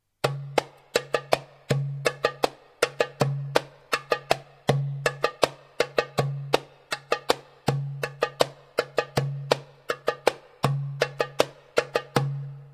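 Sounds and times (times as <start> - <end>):
darbuka drumming: 0.2 - 12.7.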